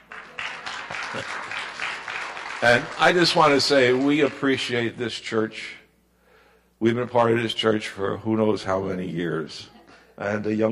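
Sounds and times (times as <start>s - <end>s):
audience applause in a church: 0.0s - 5.0s
speech: 2.6s - 5.8s, 6.8s - 10.7s.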